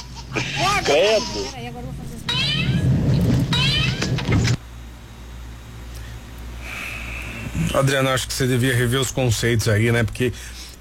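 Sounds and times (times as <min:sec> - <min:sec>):
low hum: 0:00.0 - 0:10.7
speech: 0:00.4 - 0:02.0, 0:07.8 - 0:10.6
cat meowing: 0:02.3 - 0:04.5.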